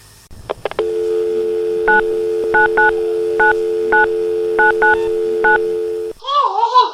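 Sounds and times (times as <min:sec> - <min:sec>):
telephone dial tone: 0:00.8 - 0:06.2
person speaking: 0:02.0 - 0:06.3.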